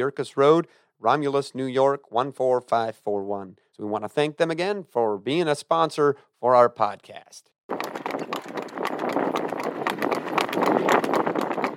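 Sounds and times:
speech: 0.0 - 8.6
horse hooves clip-clopping: 7.7 - 11.7.

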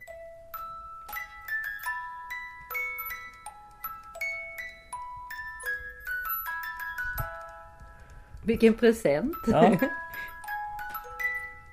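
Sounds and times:
faint mechanical whir of a music box: 0.0 - 11.7
small music box playing a melody: 0.0 - 11.7
speech: 8.5 - 10.0.

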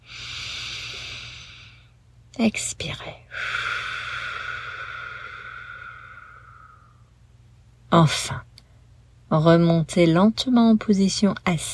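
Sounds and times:
deep inhale in a bent-over position during meditation: 0.0 - 2.0, 3.3 - 7.1
speech: 2.4 - 3.7, 7.9 - 8.5, 9.3 - 11.7.

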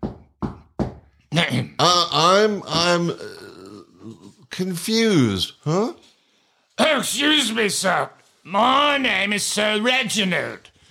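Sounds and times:
firm knocking on a door: 0.0 - 1.1
speech: 1.3 - 3.4, 4.5 - 6.1, 6.8 - 10.7.

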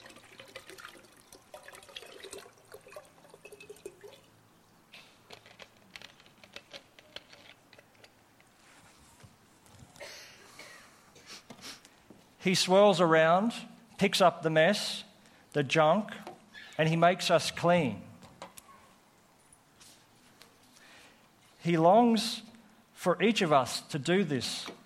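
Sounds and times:
drips: 0.0 - 4.4
liquid pouring and sloshing around a container: 0.0 - 4.4
trickling: 0.0 - 7.5
speech: 12.4 - 15.0, 15.6 - 16.2, 16.8 - 18.0, 21.6 - 24.8.

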